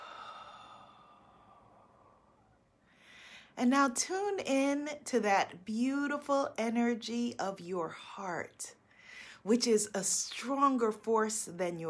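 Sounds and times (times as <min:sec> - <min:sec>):
slow soft breathing: 0:00.0 - 0:03.6
speech: 0:03.6 - 0:08.8, 0:09.4 - 0:11.8.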